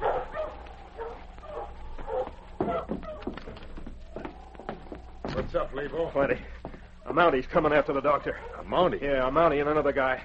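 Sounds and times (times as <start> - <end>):
dog barking and whimpering with excited yelps and whines: 0.0 - 3.4, 8.3 - 8.8
steady low hum: 0.0 - 10.2
speech: 5.4 - 10.2.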